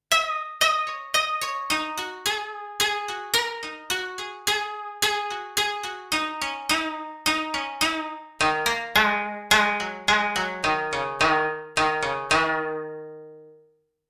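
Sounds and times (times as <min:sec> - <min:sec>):
koto on Kurzweil PC361: 0:00.0 - 0:13.6.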